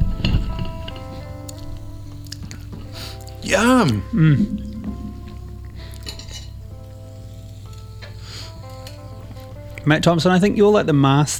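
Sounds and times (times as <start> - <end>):
low rumble: 0.0 - 11.1
speech: 3.5 - 4.7, 9.8 - 11.3
cocktail glasses clinking in a toast: 4.1 - 6.6.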